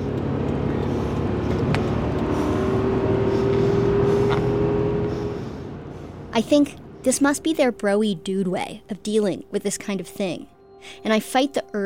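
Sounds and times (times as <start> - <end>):
car engine accelerating hard: 0.0 - 7.5
loud road noise: 0.0 - 10.3
speech: 6.4 - 11.8.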